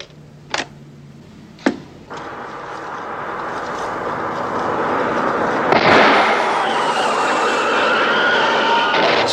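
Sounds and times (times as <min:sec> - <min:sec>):
car and road noise: 0:00.0 - 0:09.3
tire blowout bang: 0:01.6 - 0:09.3
gunshot: 0:02.2 - 0:07.8.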